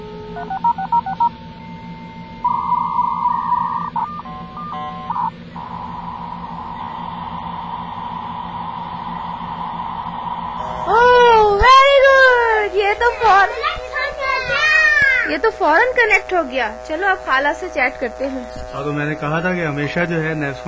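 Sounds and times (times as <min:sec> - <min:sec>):
low mains hum: 0:00.0 - 0:20.6
speech: 0:00.4 - 0:00.8, 0:16.1 - 0:20.6
touch-tone DTMF beeps dialing a phone number for a dial-up internet connection: 0:00.4 - 0:01.3, 0:02.5 - 0:07.1
steady tone: 0:01.8 - 0:20.6.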